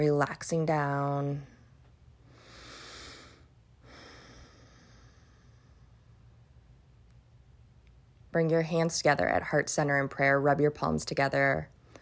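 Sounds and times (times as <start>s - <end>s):
speech: 0.0s - 1.5s, 8.4s - 11.7s
breathing in and out through nose during a guided relaxation exercise: 2.3s - 5.8s.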